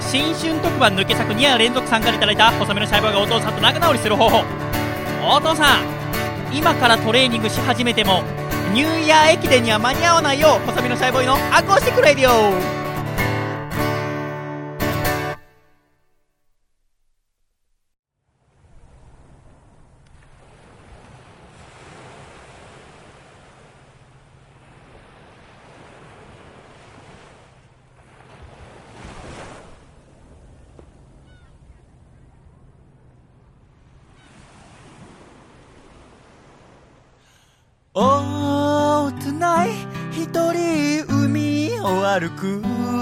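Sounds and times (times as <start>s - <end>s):
ocean waves breaking on shore: 0.0s - 14.1s, 18.2s - 41.0s
short burst of music: 0.0s - 16.4s, 38.0s - 43.0s
speech: 0.1s - 12.8s, 42.2s - 43.0s.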